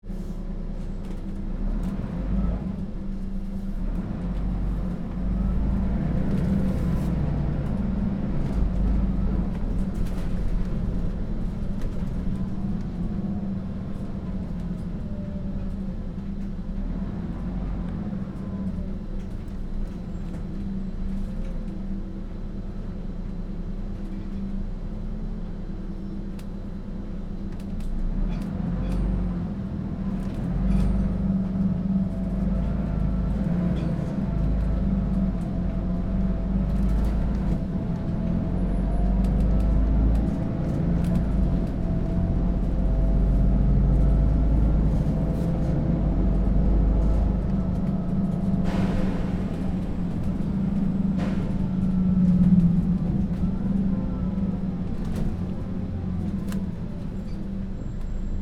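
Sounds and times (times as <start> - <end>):
bus ride heard from inside the bus: 0.0 - 58.4.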